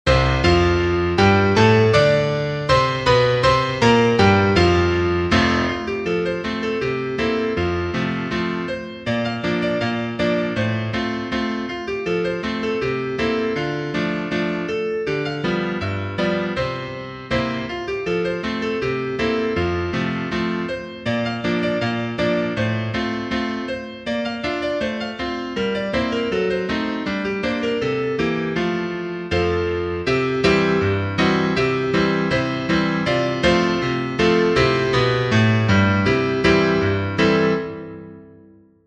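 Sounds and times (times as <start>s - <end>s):
piano: 0.0s - 38.8s.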